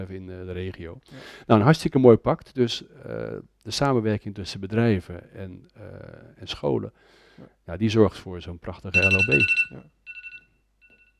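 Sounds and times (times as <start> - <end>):
speech: 0.0 - 10.0
phone ringing with a short electronic tone: 9.0 - 11.1.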